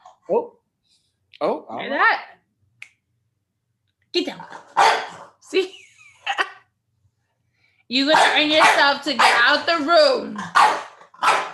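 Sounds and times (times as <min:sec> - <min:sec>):
speech: 0:00.3 - 0:02.4, 0:04.1 - 0:06.4, 0:07.9 - 0:11.4
dog barking: 0:04.7 - 0:05.3, 0:08.1 - 0:09.6, 0:10.4 - 0:11.5.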